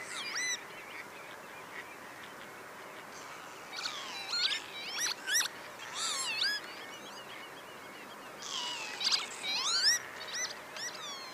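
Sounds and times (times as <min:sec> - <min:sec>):
quiet background hiss: 0:00.0 - 0:11.1
Northern lapwing giving slurred nasal calls: 0:03.0 - 0:11.3.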